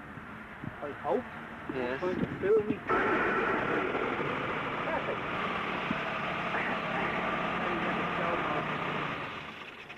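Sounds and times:
speech: 0.8 - 4.1
small car engine idling: 2.6 - 9.9.

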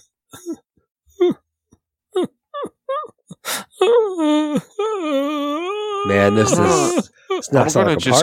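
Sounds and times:
person imitating soft sobbing from a dark building in a small town: 0.3 - 1.4, 2.1 - 8.2
longer wavering moaning wails: 3.8 - 7.7
speech: 6.1 - 8.2.

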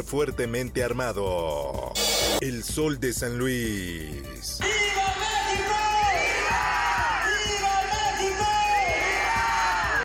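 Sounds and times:
speech: 0.0 - 4.8
large crowd roaring and yelling during the Independence Day cry in Nuevo León Mexico: 4.6 - 10.0.

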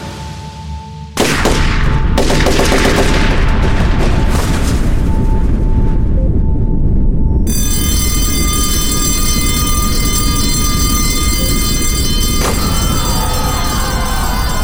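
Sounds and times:
rumbling noise: 1.1 - 14.6
assault rifle gunfire: 1.2 - 3.5
steady high tone: 5.1 - 14.6
school alarm ringing: 7.5 - 14.6.

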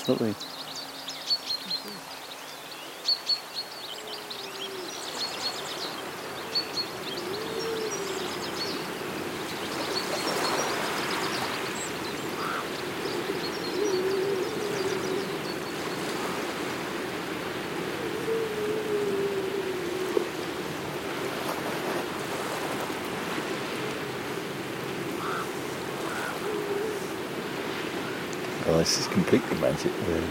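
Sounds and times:
speech: 0.0 - 0.7, 28.9 - 30.3
various birds singing and chirping: 0.0 - 30.3
grey seals singing on coastal rocks: 6.8 - 9.4, 12.4 - 21.4, 23.1 - 30.3
steady rushing surf: 7.8 - 30.3.

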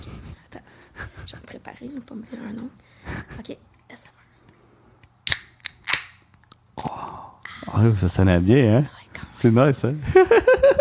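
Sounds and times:
speech: 1.5 - 4.1, 7.8 - 10.4
beverage can being cracked open: 5.2 - 6.9
laughter: 10.0 - 10.7.

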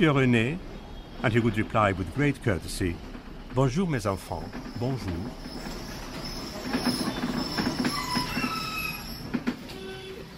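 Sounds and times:
speech: 0.0 - 5.8
tram rumbling along the rails: 0.0 - 10.3
tram wheels squealing as it slows: 4.1 - 10.3.

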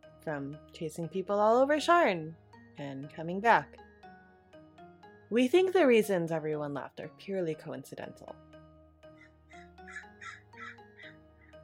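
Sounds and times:
speech: 0.2 - 3.8, 5.3 - 8.5
bird outdoors giving harsh raspy calls: 9.2 - 11.6.

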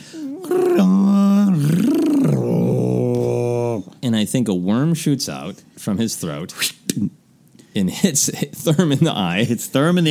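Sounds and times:
speech: 0.1 - 0.8, 4.0 - 7.1, 7.8 - 10.1
person imitating the roar of an aging Wookiee with a growly howl: 0.1 - 3.9.

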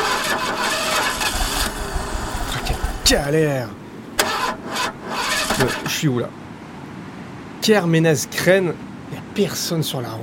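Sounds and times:
car engine cranking but failing to start: 0.0 - 6.0
speech: 3.1 - 3.8, 5.6 - 6.4, 7.6 - 10.2.

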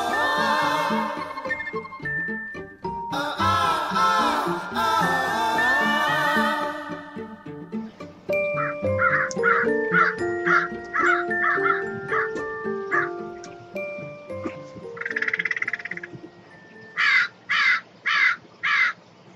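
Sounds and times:
melodic music from a portion of a song: 0.0 - 17.1
crow cawing: 8.6 - 12.4, 17.0 - 19.0.

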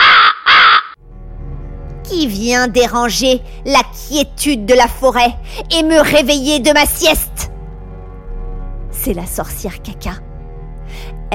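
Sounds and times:
crow cawing: 0.0 - 1.0
speech: 2.1 - 7.3, 9.0 - 10.2.

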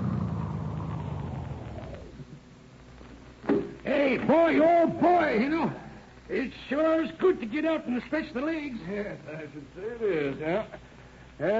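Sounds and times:
car engine rumbling as the car slows and stops: 0.0 - 2.4
speech: 4.1 - 11.5.

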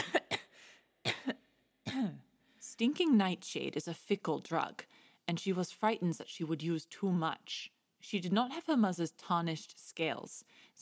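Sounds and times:
suppressed coughs: 0.0 - 2.3
speech: 2.8 - 10.8.

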